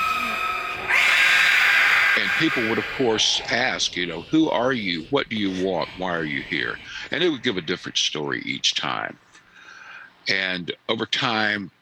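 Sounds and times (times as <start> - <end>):
eerie screeching scream: 0.0 - 8.5
speech: 2.2 - 9.2, 10.3 - 11.8.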